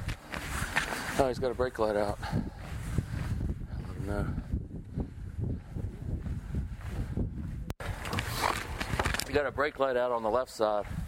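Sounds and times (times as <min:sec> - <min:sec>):
speech: 0:01.2 - 0:02.6, 0:04.1 - 0:04.4, 0:09.4 - 0:11.0
gusty wind roaring: 0:02.1 - 0:09.3.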